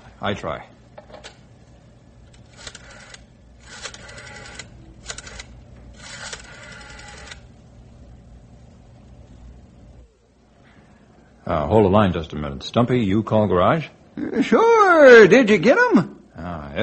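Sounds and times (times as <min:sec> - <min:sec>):
low steady hum: 0:00.0 - 0:16.8
speech: 0:00.2 - 0:00.8, 0:11.5 - 0:16.2
rotary telephone dial whirring click: 0:02.2 - 0:07.6.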